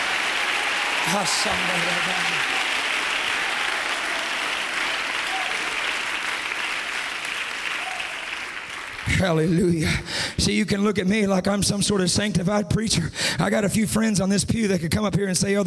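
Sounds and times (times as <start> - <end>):
audience clapping: 0.0 - 10.3
person shouting: 1.0 - 2.6
speech: 1.0 - 2.7, 9.1 - 15.6.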